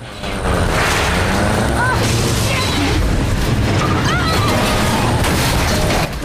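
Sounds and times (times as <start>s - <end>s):
car engine accelerating: 0.0s - 5.2s
grinding clattering noise: 0.0s - 6.2s.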